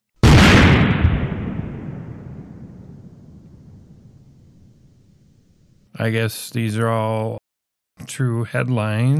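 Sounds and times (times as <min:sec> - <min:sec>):
loud firework blast: 0:00.2 - 0:05.4
speech: 0:06.0 - 0:07.4, 0:08.0 - 0:09.1.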